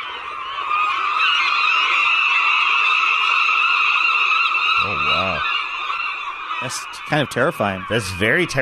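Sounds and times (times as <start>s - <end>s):
seagulls calling in a cacophonous chorus: 0.0s - 8.6s
speech: 6.6s - 8.6s.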